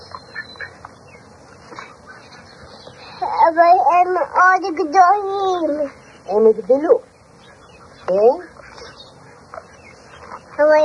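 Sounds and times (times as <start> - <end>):
ducks quacking: 0.0 - 3.3, 7.3 - 10.8
outdoor hum: 0.0 - 10.8
speech: 3.5 - 7.1, 8.1 - 8.5, 10.6 - 10.8.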